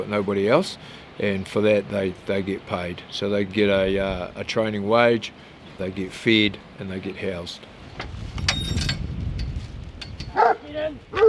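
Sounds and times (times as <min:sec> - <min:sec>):
speech: 0:00.0 - 0:08.7
low outdoor rumble: 0:00.0 - 0:11.2
faint high clinking: 0:08.4 - 0:10.6
working farm dogs barking in a paddock near a farmyard: 0:10.3 - 0:11.2.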